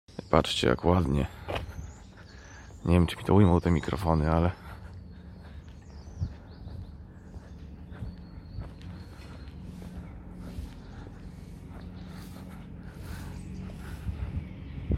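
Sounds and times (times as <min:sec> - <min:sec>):
faint chirps of birds flying in the sky: 0:00.1 - 0:14.9
speech: 0:00.3 - 0:01.4, 0:02.8 - 0:04.6
lawn mower engine drone: 0:03.6 - 0:14.9
grass being raked in a garden: 0:09.6 - 0:14.2.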